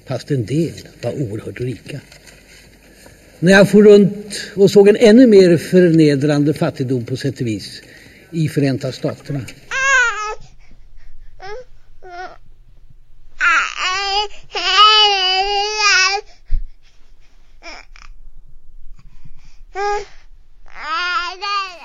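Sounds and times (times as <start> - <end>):
speech: 0.1 - 2.3, 3.4 - 9.6
baby babbling and cooing: 9.7 - 10.6, 11.4 - 12.5, 13.4 - 16.4, 17.6 - 18.2, 19.7 - 21.8.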